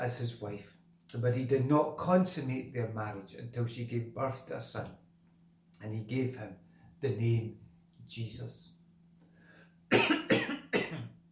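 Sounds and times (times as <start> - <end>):
speech: 0.0 - 5.0, 5.8 - 8.7
person with a croaky throat coughing on a cold snowy morning: 9.9 - 11.2.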